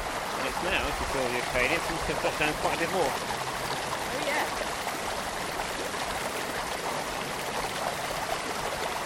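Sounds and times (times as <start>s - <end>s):
babbling brook water flowing over stones: 0.0s - 9.0s
speech: 0.6s - 3.5s.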